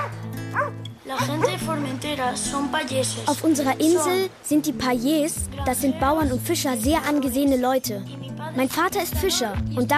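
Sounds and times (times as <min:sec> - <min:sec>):
farm guard dogs barking and yelping: 0:00.0 - 0:01.6
speech: 0:01.1 - 0:09.9.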